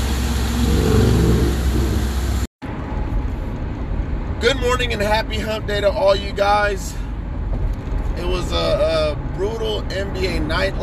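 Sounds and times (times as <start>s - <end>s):
quieter car cabin rumble: 0.0s - 2.5s
car engine droning while driving: 0.0s - 3.8s
broad road roar: 0.0s - 10.8s
speech: 4.4s - 7.0s, 8.2s - 10.8s.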